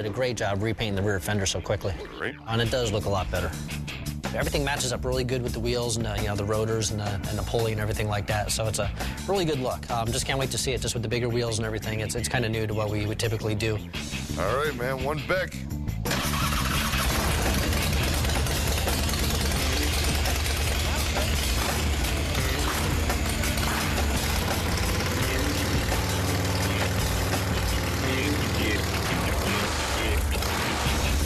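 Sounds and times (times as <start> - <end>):
speech: 0.0 - 15.8
motorcycle with custom-built exhaust idling loudly: 16.1 - 31.2.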